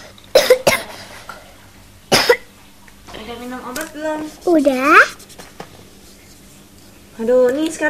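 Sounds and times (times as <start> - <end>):
child with a cold coughing: 0.3 - 1.0, 2.1 - 2.5
speech: 3.3 - 5.2, 7.2 - 7.8.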